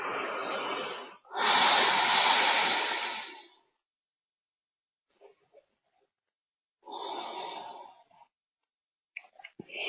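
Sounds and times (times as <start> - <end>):
slow deep breathing during a guided meditation: 0.0 - 3.8, 6.8 - 8.4.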